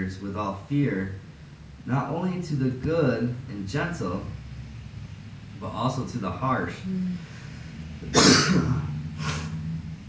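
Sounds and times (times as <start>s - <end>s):
speech: 0.0s - 4.4s, 5.6s - 7.3s, 8.0s - 9.4s
throat clearing: 8.1s - 8.8s.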